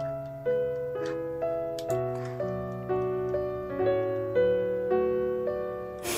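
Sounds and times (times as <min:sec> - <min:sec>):
soft instrumental background music with sustained chords: 0:00.0 - 0:06.1.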